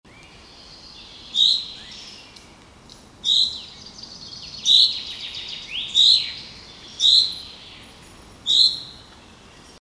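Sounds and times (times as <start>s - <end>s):
common chaffinch Fringilla coelebs calling sharp bright notes: 0.6s - 2.4s, 3.2s - 9.1s.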